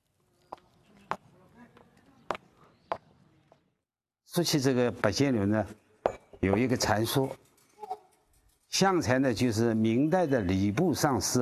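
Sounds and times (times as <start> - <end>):
high-heel footsteps along Ming-style houses by the old canal in Nanxun: 0.5 - 3.6
speech: 4.4 - 5.8, 6.4 - 7.4, 8.7 - 11.4.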